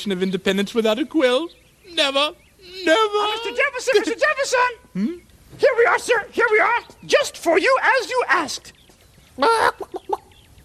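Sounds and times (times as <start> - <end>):
speech: 0.0 - 8.8, 9.4 - 10.0
chicken squawking and clucking: 9.3 - 10.4.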